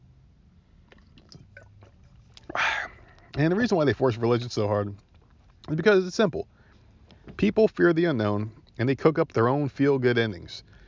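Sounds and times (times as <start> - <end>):
person sipping water: 0.9 - 3.4
louder breathy burst: 2.5 - 3.2
speech: 3.4 - 5.0, 5.7 - 6.5, 7.4 - 10.8.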